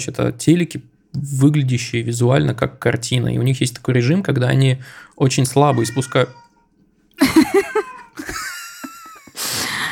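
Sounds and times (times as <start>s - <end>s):
speech: 0.0s - 6.4s, 7.2s - 8.4s
domestic cat meowing: 5.6s - 6.7s.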